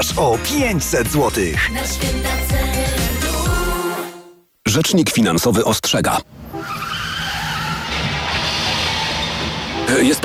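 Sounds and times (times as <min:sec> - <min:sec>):
speech: 0:00.1 - 0:03.0, 0:04.7 - 0:06.6, 0:09.9 - 0:10.2
car tire screech in a road accident: 0:06.4 - 0:10.2.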